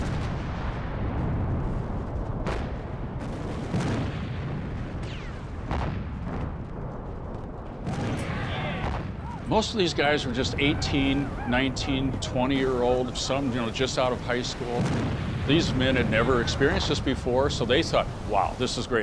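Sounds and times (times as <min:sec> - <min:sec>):
naval bombardment artillery fire during a Pacific island assault: 0:00.0 - 0:18.7
speech: 0:09.5 - 0:19.0.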